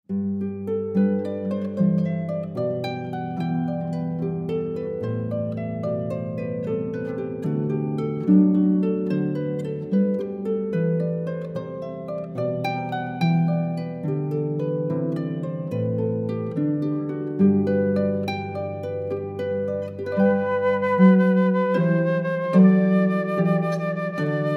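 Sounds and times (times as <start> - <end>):
harp: 0.1 - 24.5
flute: 20.0 - 24.5.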